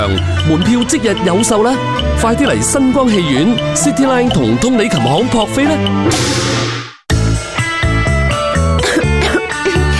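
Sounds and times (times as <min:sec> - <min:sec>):
loud rhythmic music jingle: 0:00.0 - 0:09.9
speech: 0:00.1 - 0:06.5
harsh phlegmy cough trying to clear phlegm from the throat: 0:08.8 - 0:09.9.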